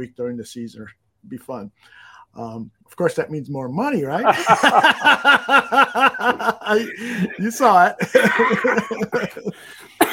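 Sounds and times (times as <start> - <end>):
speech: 0.0 - 9.8
laughter: 4.2 - 10.1
person coughing: 6.7 - 10.1
rhythmic breathy vocal bursts: 6.8 - 7.5.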